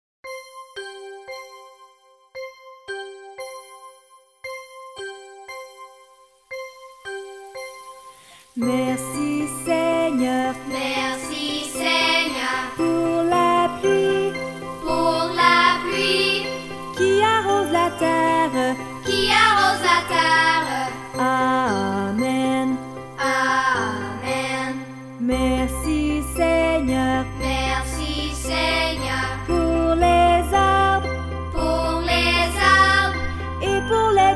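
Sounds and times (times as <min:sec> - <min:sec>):
children singing: 0:08.6 - 0:25.0, 0:25.9 - 0:31.0, 0:31.6 - 0:34.3.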